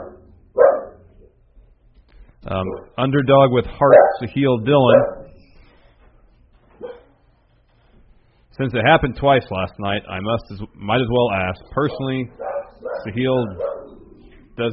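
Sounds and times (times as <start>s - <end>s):
dog bark: 0.0s - 1.0s, 3.9s - 4.2s, 4.9s - 5.3s, 6.8s - 7.1s, 12.4s - 13.9s
steady low hum: 0.0s - 14.7s
speech: 2.4s - 5.2s, 8.6s - 13.7s, 14.6s - 14.7s.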